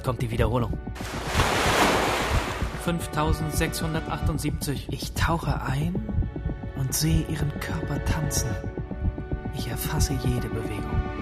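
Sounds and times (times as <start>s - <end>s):
speech: 0.0s - 1.4s, 2.8s - 8.8s, 9.5s - 11.0s
ocean waves surging: 1.0s - 2.8s.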